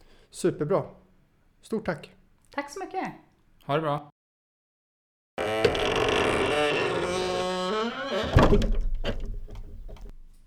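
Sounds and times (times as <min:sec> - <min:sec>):
speech: 0:00.3 - 0:01.0, 0:01.6 - 0:04.1, 0:08.1 - 0:08.8
unoiled door creaking as it swings open: 0:05.4 - 0:10.1.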